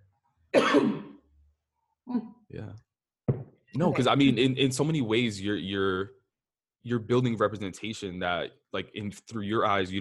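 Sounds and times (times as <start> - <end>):
harsh throat-clearing cough: 0.5 - 1.2
speech: 2.1 - 2.9, 3.8 - 6.2, 6.8 - 9.9.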